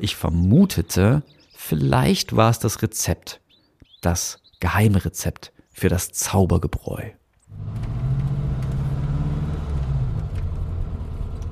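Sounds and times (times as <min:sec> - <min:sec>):
speech: 0:00.0 - 0:03.4, 0:04.0 - 0:07.8
car engine driving along the road: 0:07.5 - 0:11.5.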